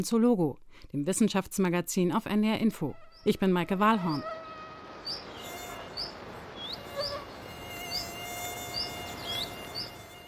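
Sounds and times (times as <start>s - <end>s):
speech: 0.0s - 4.4s
faint hissing outdoor background in summer: 0.0s - 10.2s
mosquito whining: 4.0s - 10.2s
short high bird chirps: 5.0s - 10.0s.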